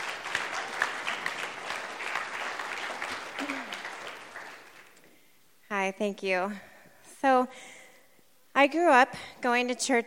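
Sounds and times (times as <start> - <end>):
room full of people clapping: 0.0 - 5.0
speech: 5.9 - 7.8, 8.6 - 10.0.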